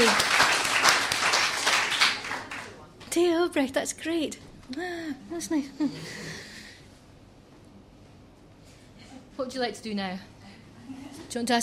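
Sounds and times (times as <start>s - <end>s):
people cheering: 0.0s - 2.8s
crowd clapping: 0.0s - 2.9s
speech: 3.5s - 6.5s, 9.4s - 11.6s.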